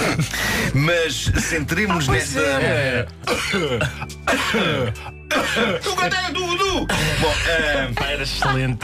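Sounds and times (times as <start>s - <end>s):
rhythmic coughs and throat-clearing as a beat: 0.0s - 8.8s
speech: 0.2s - 8.8s
laughter: 6.8s - 8.8s.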